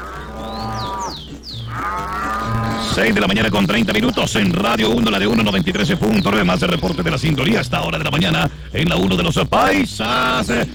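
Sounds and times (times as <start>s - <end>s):
cow mooing at milking time: 0.0s - 3.2s
speech: 3.0s - 10.7s.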